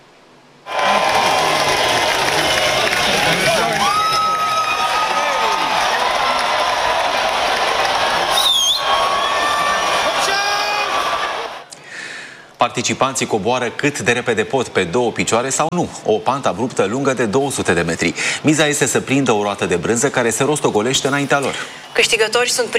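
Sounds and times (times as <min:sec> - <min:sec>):
large outdoor crowd roaring and cheering at a cheese-rolling race: 0:00.6 - 0:11.7
whoops and shouts: 0:00.7 - 0:11.6
sharp whistle: 0:08.3 - 0:09.5
speech: 0:12.6 - 0:22.7.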